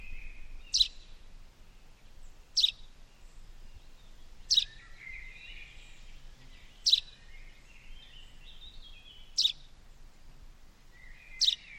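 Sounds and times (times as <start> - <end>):
constant low rumbling hiss: 0.0 - 11.7
bird calls with short sharp high ticks: 0.7 - 1.0, 2.6 - 2.9, 4.4 - 4.8, 6.8 - 7.1, 9.2 - 9.6, 11.4 - 11.7.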